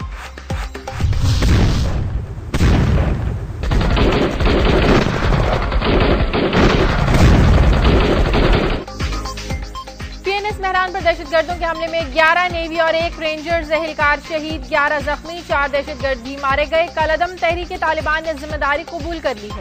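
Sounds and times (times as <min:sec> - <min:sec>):
gunfire volleys during a commando operation at a naval air base: 0:00.9 - 0:08.9
speech: 0:11.0 - 0:19.5.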